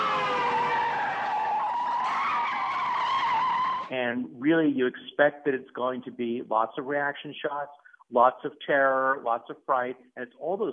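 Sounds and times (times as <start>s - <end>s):
car engine roar: 0.0s - 4.0s
car tires skidding down a steep highway with hairpin turns: 0.0s - 4.0s
speech: 3.9s - 10.7s.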